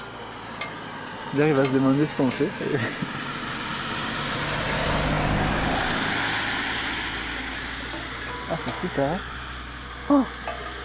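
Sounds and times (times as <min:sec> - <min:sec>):
speech: 0:01.3 - 0:03.2, 0:08.6 - 0:09.4, 0:10.1 - 0:10.4
car passing by on a mountain road: 0:03.2 - 0:09.8.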